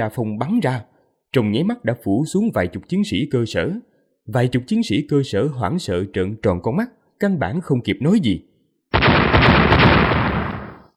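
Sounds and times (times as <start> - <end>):
speech: 0.0 - 8.5
powerful explosion blowing a group of soldiers apart: 9.0 - 10.8.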